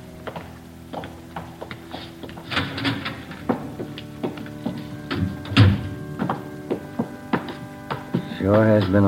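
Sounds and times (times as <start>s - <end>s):
footsteps climbing stairs: 0.0s - 9.0s
low hum: 0.0s - 9.0s
door creaking open: 2.4s - 3.9s, 5.0s - 6.4s
speech: 8.4s - 9.0s.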